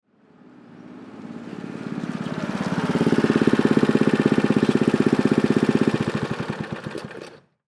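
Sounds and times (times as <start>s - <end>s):
go kart pulling up from the right: 0.4s - 7.6s
go kart engine shutting off: 1.4s - 7.6s.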